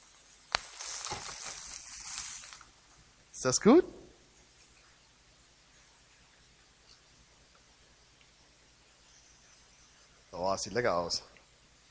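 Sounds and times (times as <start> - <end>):
meat sizzling in a hot pan: 0.0 - 2.8
speech: 3.4 - 4.0, 10.6 - 11.3.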